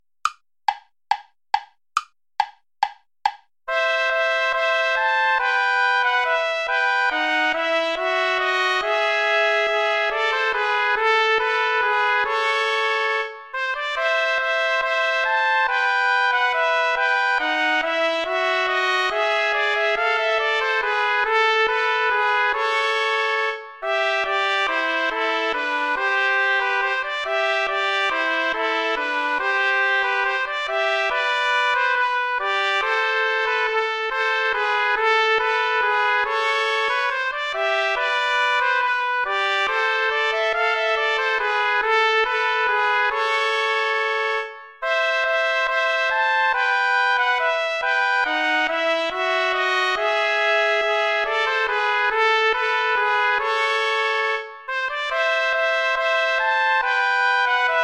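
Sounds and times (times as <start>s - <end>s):
allemande play-along backing music without trombone: 0.2s - 57.8s.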